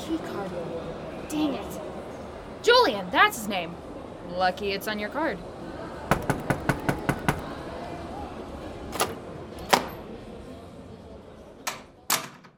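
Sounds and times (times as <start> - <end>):
speech: 0.1 - 1.9, 2.6 - 5.5
sharp knocking on a door: 6.1 - 7.5.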